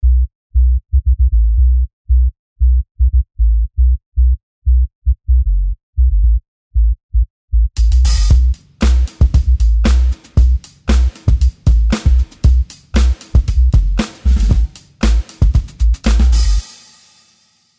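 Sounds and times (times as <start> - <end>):
equalised square wave sub bass: 0.0 - 16.6.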